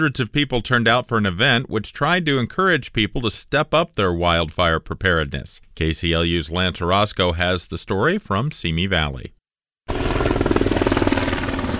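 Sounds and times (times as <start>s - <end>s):
speech: 0.0s - 10.0s
firefighting helicopter rotor chopping while swooping low over a hillside: 9.9s - 11.7s.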